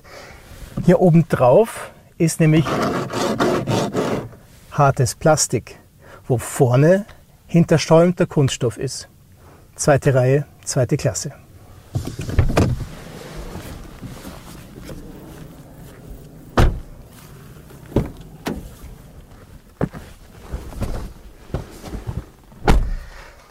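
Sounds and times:
speech: 0.8s - 3.1s, 4.8s - 9.1s, 9.8s - 12.4s
soft rustling and handling noises: 11.6s - 22.6s
car doors slamming with a thin tinny metallic thud: 11.9s - 19.1s, 22.6s - 23.1s.

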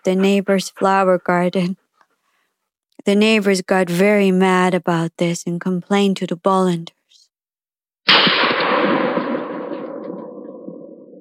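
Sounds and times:
speech: 0.0s - 1.8s, 3.0s - 7.0s
shotgun firing at night: 8.1s - 10.9s.

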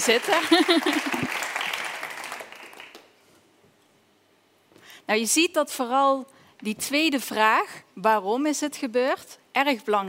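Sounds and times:
speech: 0.0s - 1.4s, 5.1s - 10.0s
audience applause: 0.0s - 3.1s
laughter: 0.2s - 1.4s.

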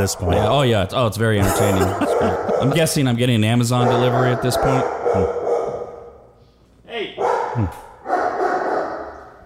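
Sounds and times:
speech: 0.0s - 5.4s, 7.6s - 7.8s
laughter: 1.4s - 3.1s
dog barking: 1.9s - 2.9s, 3.8s - 6.3s, 7.2s - 9.4s.

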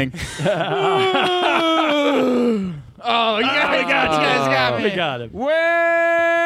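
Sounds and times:
laughter: 0.0s - 5.0s
speech: 0.0s - 6.3s
long loud vocalized yawn: 0.7s - 3.1s.

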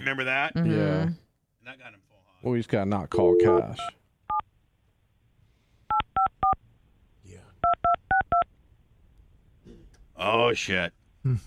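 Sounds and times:
speech: 0.1s - 4.0s, 10.2s - 11.4s
telephone keypad dialing tones: 7.6s - 8.4s.

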